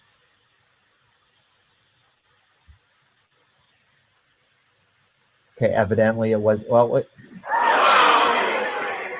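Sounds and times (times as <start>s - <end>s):
speech: 5.6s - 7.6s
crowd gasping together: 7.2s - 9.1s.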